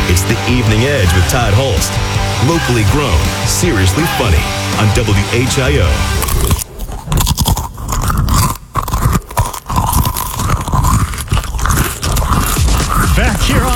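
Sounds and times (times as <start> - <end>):
speech: 0.3 - 6.6, 13.4 - 13.7
munching crunchy cheese crackers: 5.7 - 13.7.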